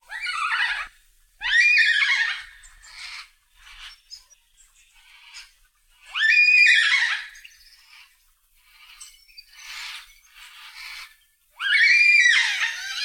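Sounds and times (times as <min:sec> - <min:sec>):
softer yellow-tailed black cockatoo calls: 0:00.0 - 0:04.0, 0:05.0 - 0:13.0
yellow-tailed black cockatoo screeching wails: 0:00.1 - 0:03.3, 0:06.1 - 0:07.4, 0:10.7 - 0:13.0.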